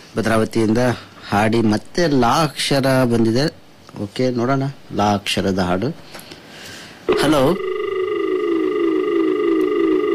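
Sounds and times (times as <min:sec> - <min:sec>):
speech: 0:00.1 - 0:06.1, 0:07.1 - 0:07.8
telephone disconnected tone after a call is cut off: 0:07.1 - 0:10.1.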